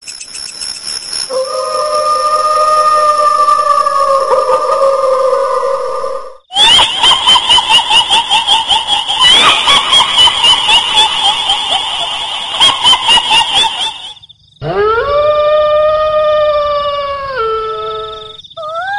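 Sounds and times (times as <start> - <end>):
dog howling: 1.3 - 7.0, 14.6 - 18.9
kuntilanak ghost laughing and crying: 1.3 - 18.9.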